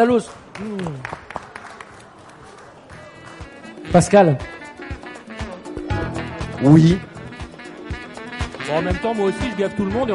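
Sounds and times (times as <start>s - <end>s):
speech: 0.0s - 1.3s, 3.9s - 4.5s, 6.6s - 7.1s, 8.7s - 10.1s
scattered applause from a small audience: 0.0s - 3.8s.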